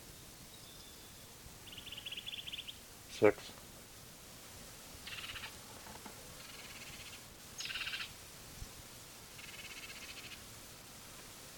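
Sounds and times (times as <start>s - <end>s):
steady hiss: 0.0s - 11.5s
bird giving harsh buzzy protest calls: 1.6s - 3.3s, 5.0s - 5.6s, 6.4s - 8.2s
speech: 3.2s - 3.6s.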